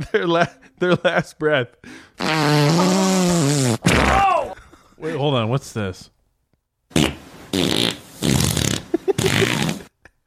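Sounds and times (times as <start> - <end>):
speech: 0.0 - 4.0, 5.0 - 6.2, 7.6 - 8.0
loud rippling farts and popping toots: 2.2 - 4.2, 6.9 - 9.9.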